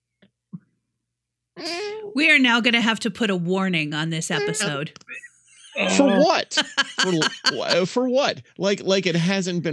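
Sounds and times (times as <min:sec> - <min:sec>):
person imitating cat meows: 0:01.6 - 0:02.2, 0:04.4 - 0:04.8, 0:05.8 - 0:06.4
speech: 0:01.6 - 0:09.7
laughter: 0:04.3 - 0:04.8, 0:05.6 - 0:09.7.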